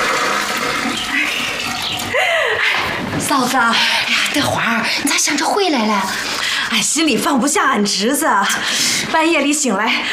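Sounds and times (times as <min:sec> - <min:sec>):
toilet flushing: 0:00.0 - 0:02.1
speech: 0:03.3 - 0:10.1.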